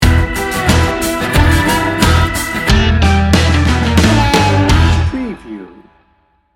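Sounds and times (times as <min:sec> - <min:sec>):
macho blues rock sting bumper: 0:00.0 - 0:05.4.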